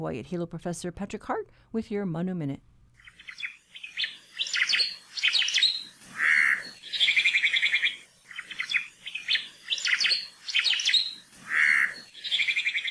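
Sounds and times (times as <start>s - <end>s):
speech: 0.0s - 3.4s
Omao Hawaiian thrush singing: 3.2s - 12.8s.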